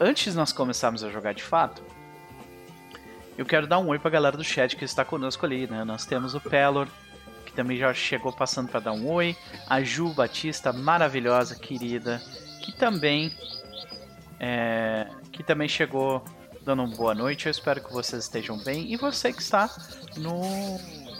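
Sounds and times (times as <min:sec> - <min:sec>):
speech: 0:00.0 - 0:02.0, 0:03.4 - 0:21.0
small bird chirping and singing: 0:08.1 - 0:21.1.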